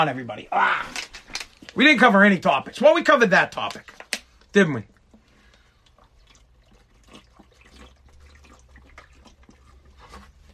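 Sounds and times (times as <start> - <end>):
speech: 0.0 - 1.2, 1.8 - 4.9
water pouring into a glass: 5.0 - 10.4.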